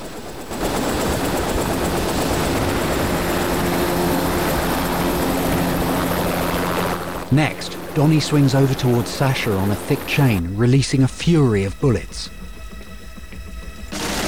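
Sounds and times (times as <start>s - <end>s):
helicopter rotors and engine roaring during takeoff: 0.0s - 14.2s
speech: 7.3s - 12.4s.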